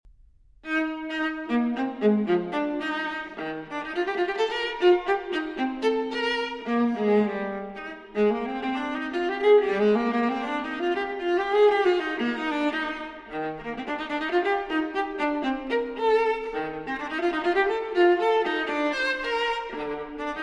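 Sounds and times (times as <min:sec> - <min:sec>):
viola playing a courante in E-flat major: 0:00.6 - 0:20.4.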